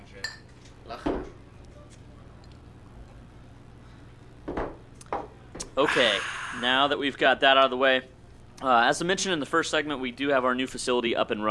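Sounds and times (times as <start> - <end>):
low hum: 0.0 - 11.4
glasses of fresh beer clinking in a toast: 0.2 - 0.5
speech: 5.8 - 11.4.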